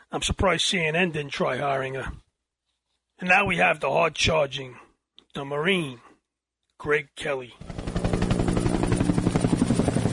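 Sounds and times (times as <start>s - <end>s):
speech: 0.1s - 2.2s, 3.2s - 6.1s, 6.8s - 7.7s
helicopter flying by with thumping rotor blades and engine drone: 7.6s - 10.1s.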